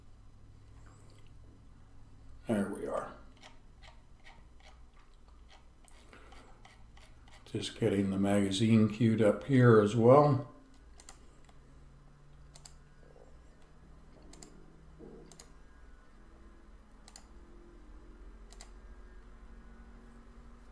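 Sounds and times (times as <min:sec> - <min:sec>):
steady low electrical hum: 0:00.0 - 0:20.7
computer mouse clicks: 0:03.3 - 0:07.5, 0:10.7 - 0:11.6, 0:12.3 - 0:15.6, 0:17.0 - 0:17.4, 0:18.4 - 0:18.8
speech: 0:07.5 - 0:10.5.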